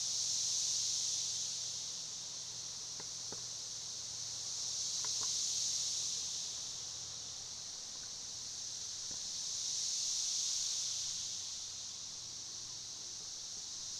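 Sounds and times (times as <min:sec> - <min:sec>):
cicada song rising and falling in smooth waves: 0:00.0 - 0:13.9.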